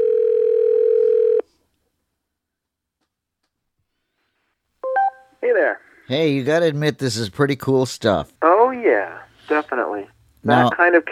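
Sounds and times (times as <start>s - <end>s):
phone line tone of a call from a Dot device to an iPhone: 0.0s - 1.4s, 4.8s - 5.3s
speech: 5.6s - 11.1s.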